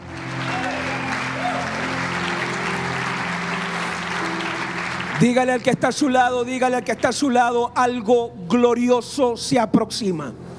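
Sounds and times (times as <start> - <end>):
audience applauding: 0.0 - 6.1
low sustained musical drone: 0.0 - 8.4
speech: 5.2 - 10.4.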